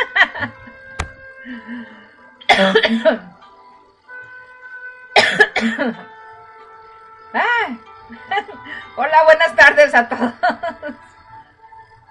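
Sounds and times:
speech: 0:01.5 - 0:03.3, 0:05.6 - 0:06.1, 0:07.3 - 0:10.7
person coughing after choking on tea: 0:02.5 - 0:03.2, 0:05.2 - 0:06.0.

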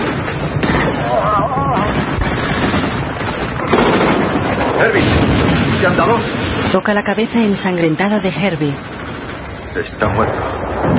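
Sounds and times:
gunfire from soldiers' guns in a battle between German and Russian troops: 0:00.0 - 0:07.5
speech: 0:04.9 - 0:09.0, 0:09.8 - 0:10.9.

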